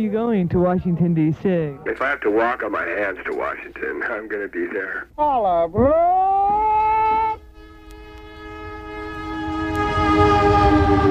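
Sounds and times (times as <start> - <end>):
speech: 0.0 - 6.4
lingering tonal hum: 5.8 - 11.0
passenger train horn blasting a sustained chord: 7.3 - 11.0
low rumbling of moving passenger train leaving terminal: 8.5 - 11.0.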